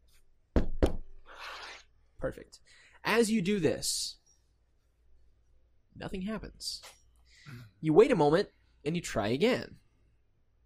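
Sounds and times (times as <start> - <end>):
loud solid knocks on a painted door: 0.5 - 1.1
speech: 2.2 - 4.2, 6.0 - 9.8.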